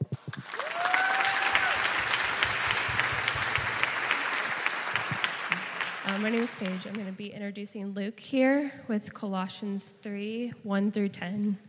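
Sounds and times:
sustained applause from an audience welcoming a guest speaker: 0.2s - 7.2s
speech: 6.2s - 11.6s.

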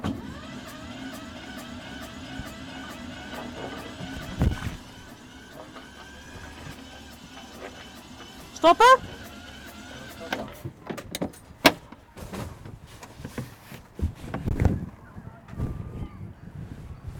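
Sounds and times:
small engine running rough with leaking intake valve, sputtering and knocking: 0.0s - 12.0s
voices murmuring faintly: 0.6s - 12.2s, 14.5s - 16.6s
speech: 8.6s - 9.1s.

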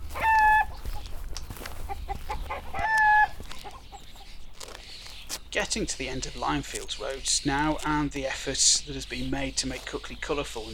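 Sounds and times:
drawn-out chicken squawking calls: 0.0s - 4.4s
chickens clucking among well-kept beds of produce: 0.0s - 10.7s
speech: 5.7s - 10.7s.

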